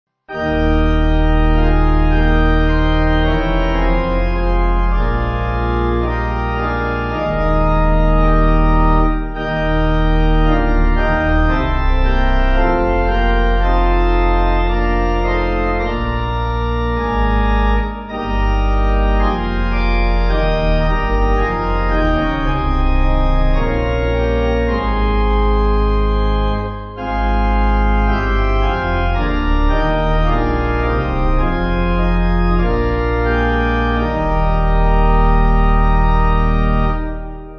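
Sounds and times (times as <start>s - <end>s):
pipe organ note in E flat: 0.3s - 37.5s.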